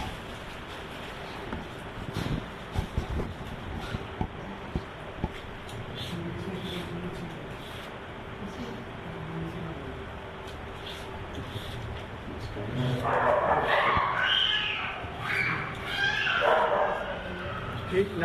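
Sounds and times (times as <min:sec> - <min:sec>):
steady low hum: 0:00.0 - 0:18.2
dog barking and whimpering in short high-pitched bursts: 0:13.0 - 0:17.9.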